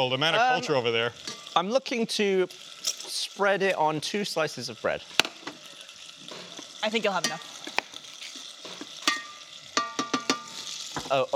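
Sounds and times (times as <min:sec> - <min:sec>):
speech: 0:00.0 - 0:05.3, 0:06.8 - 0:07.5, 0:11.1 - 0:11.3
bacon frying and sizzling in a pan: 0:00.0 - 0:11.3
metal utensil clinking against a pan: 0:01.2 - 0:01.6, 0:07.2 - 0:07.8, 0:08.6 - 0:10.7.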